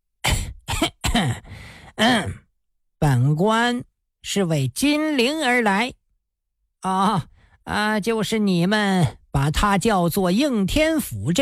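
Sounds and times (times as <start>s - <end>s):
dry coughing: 0.2s - 2.5s
throat clearing: 0.3s - 2.5s
speech: 0.8s - 2.4s, 3.4s - 6.0s, 6.8s - 11.4s.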